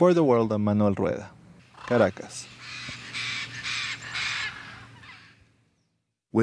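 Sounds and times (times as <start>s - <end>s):
speech: 0.0s - 3.0s
low steady urban hum: 0.1s - 5.8s
birds squawking harshly in the city of Caracas: 1.6s - 5.9s.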